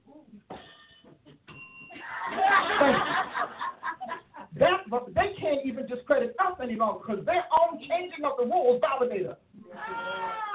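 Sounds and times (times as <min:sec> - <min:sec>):
bell-like sound effect chimes: 0:00.9 - 0:02.0
laughter: 0:02.0 - 0:04.6
speech: 0:04.6 - 0:09.4.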